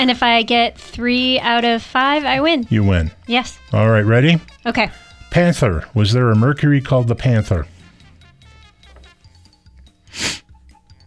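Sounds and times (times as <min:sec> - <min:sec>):
speech: 0:00.0 - 0:07.7
quiet steady music: 0:00.0 - 0:11.0
nose sniffle: 0:10.0 - 0:10.5.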